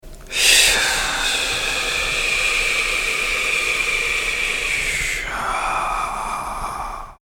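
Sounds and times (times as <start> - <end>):
person exhaling the si healing sound in qigong practice: 0.3 - 7.2.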